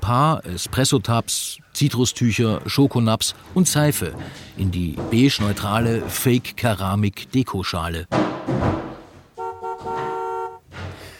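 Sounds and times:
speech: 0:00.1 - 0:08.9
car horn honked by a young man in the distance: 0:09.4 - 0:10.7.

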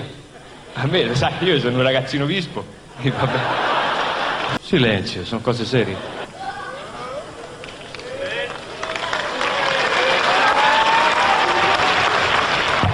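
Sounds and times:
speech: 0:00.8 - 0:03.7, 0:04.7 - 0:06.2
laughter: 0:03.0 - 0:04.6
audience applause at a song contest stage: 0:07.4 - 0:12.9
audience shouting at a song contest stage: 0:08.0 - 0:12.8.

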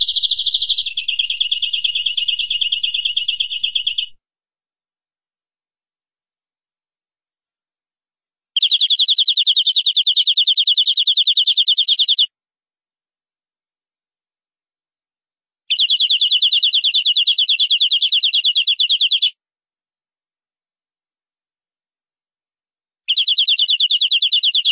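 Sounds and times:
canary singing trills of rapid high notes: 0:00.0 - 0:04.2, 0:08.6 - 0:12.3, 0:15.7 - 0:19.3, 0:23.1 - 0:24.7.

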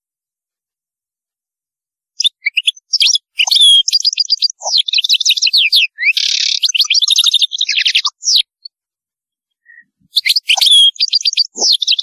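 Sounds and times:
European goldfinch song: 0:02.2 - 0:08.7, 0:09.6 - 0:12.0.

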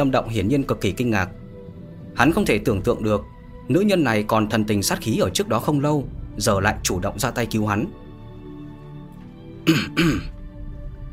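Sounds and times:
speech: 0:00.0 - 0:01.4, 0:02.2 - 0:08.0, 0:09.6 - 0:10.4
man giving a dry cough: 0:09.6 - 0:10.4.

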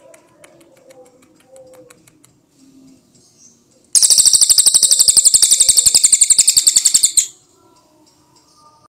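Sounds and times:
Cililin bird giving a buzzy trill: 0:04.0 - 0:07.4.

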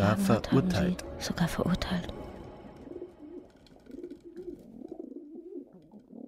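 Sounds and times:
speech: 0:00.1 - 0:02.2
pigeons cooing at a main railway station: 0:02.7 - 0:06.2.

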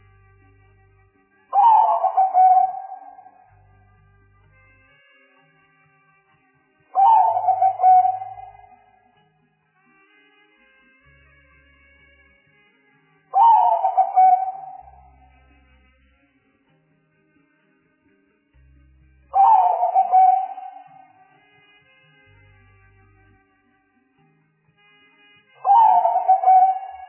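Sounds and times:
spotted dove cooing: 0:01.6 - 0:03.4, 0:07.0 - 0:08.8, 0:13.4 - 0:15.1, 0:19.4 - 0:21.1, 0:25.7 - 0:27.0.

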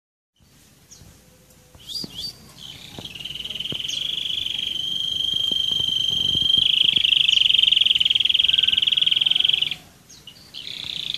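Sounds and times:
Roller canary rolling trill song: 0:01.4 - 0:10.0.

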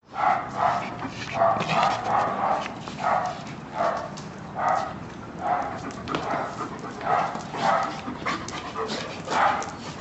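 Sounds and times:
agitated dog barking: 0:00.2 - 0:00.8, 0:01.4 - 0:08.0, 0:09.3 - 0:09.7.

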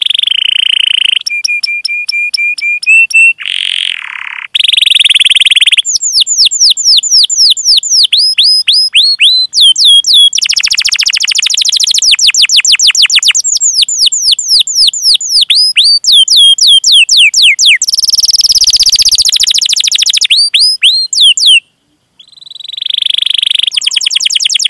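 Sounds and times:
canary singing: 0:00.0 - 0:24.6.

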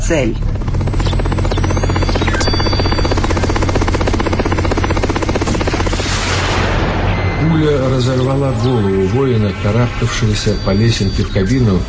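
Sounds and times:
helicopter circling and landing on a castle tower roof: 0:00.0 - 0:11.8
speech: 0:00.1 - 0:00.6, 0:07.4 - 0:11.8.

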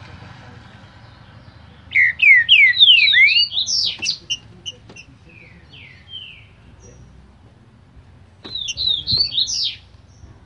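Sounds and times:
green-winged saltator whistling song from a breeder: 0:01.9 - 0:04.4, 0:08.5 - 0:10.3.

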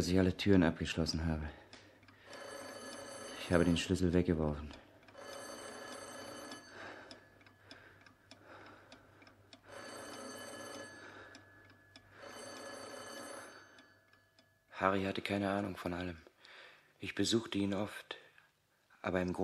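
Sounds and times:
speech: 0:00.0 - 0:01.6, 0:03.5 - 0:04.8, 0:14.8 - 0:16.3, 0:17.0 - 0:18.2, 0:19.0 - 0:19.4
telephone bell ringing: 0:02.2 - 0:04.0, 0:05.2 - 0:07.0, 0:09.6 - 0:14.4.

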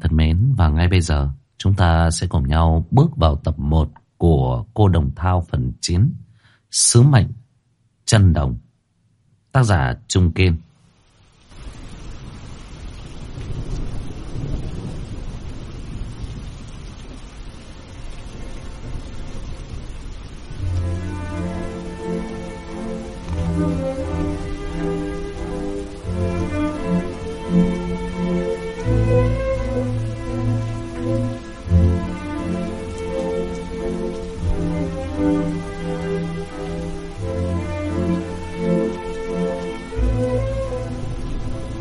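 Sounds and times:
heavy rain pouring outside an old temple at night: 0:00.0 - 0:07.4, 0:09.6 - 0:41.7
speech: 0:00.9 - 0:07.4, 0:08.1 - 0:08.6, 0:09.5 - 0:10.7
low rumbling thunder: 0:11.6 - 0:36.9, 0:40.0 - 0:41.7
music: 0:20.6 - 0:41.7.

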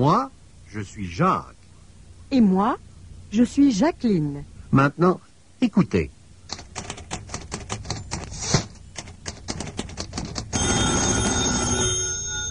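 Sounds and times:
speech: 0:00.0 - 0:01.6, 0:02.3 - 0:06.2
rapid sharp clicks and taps: 0:06.5 - 0:10.6
telephone bell ringing: 0:10.5 - 0:12.4.

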